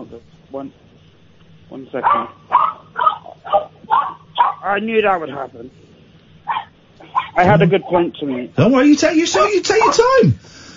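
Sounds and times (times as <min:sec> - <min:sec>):
speech: 0:00.2 - 0:00.9, 0:01.7 - 0:02.5, 0:04.6 - 0:05.8, 0:07.4 - 0:10.5
dog barking sharply: 0:02.0 - 0:04.7, 0:06.4 - 0:08.5, 0:09.3 - 0:10.2.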